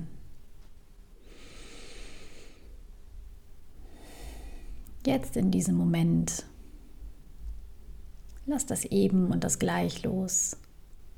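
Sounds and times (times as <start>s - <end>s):
slow deep breaths during a calming breathing exercise: 1.2s - 2.8s, 3.8s - 4.9s
speech: 5.0s - 6.5s, 8.5s - 10.6s.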